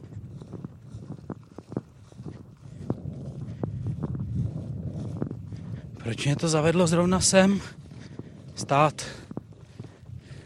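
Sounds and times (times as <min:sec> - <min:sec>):
footsteps crunching: 0:00.0 - 0:10.4
wind rumbling and gusting outdoors: 0:00.0 - 0:10.4
speech: 0:06.0 - 0:07.8, 0:08.6 - 0:09.2.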